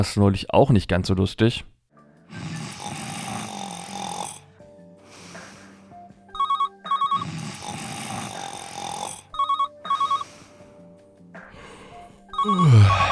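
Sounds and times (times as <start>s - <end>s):
speech: 0.0s - 1.7s
person snoring: 2.3s - 6.0s, 7.1s - 9.4s, 11.5s - 13.1s
telephone ringing in short paired bursts: 6.3s - 7.2s, 9.3s - 10.3s, 12.3s - 13.1s.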